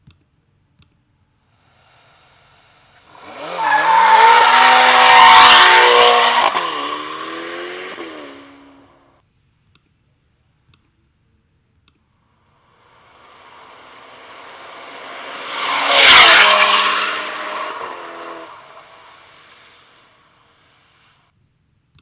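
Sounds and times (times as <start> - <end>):
Ferrari Portofino engine revving: 2.8 - 9.0, 13.0 - 20.0.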